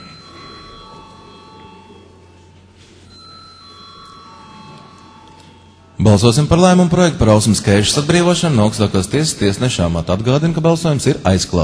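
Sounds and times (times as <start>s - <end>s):
chairman's bell rung in parliament session before a vote: 0.0s - 7.2s
speech: 6.0s - 11.6s.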